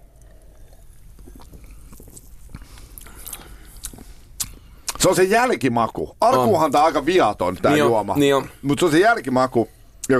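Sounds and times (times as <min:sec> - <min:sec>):
faint fizzy crackle of soda: 0:00.0 - 0:04.7
person sipping and swallowing soda: 0:00.0 - 0:05.0
speech: 0:05.0 - 0:10.1.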